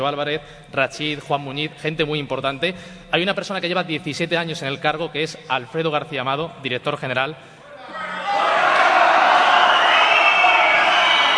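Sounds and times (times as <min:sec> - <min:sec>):
speech: 0:00.0 - 0:08.0
large crowd cheering and applauding: 0:08.0 - 0:11.3.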